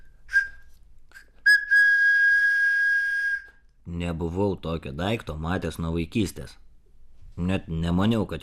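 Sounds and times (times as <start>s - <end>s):
toy hammer whistle blown through its handle: 0.0s - 3.6s
speech: 3.9s - 6.6s, 7.4s - 8.4s.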